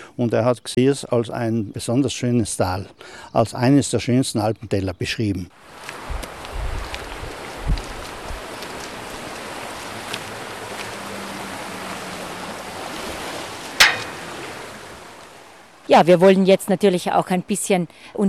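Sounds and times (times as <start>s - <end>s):
speech: 0.2s - 6.0s, 15.9s - 18.2s
mountain stream rushing: 5.6s - 15.5s.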